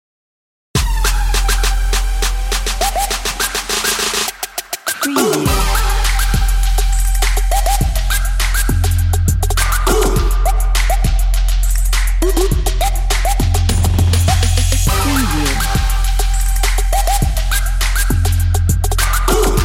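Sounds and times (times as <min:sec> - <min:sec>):
trap beat: 0:00.8 - 0:19.6.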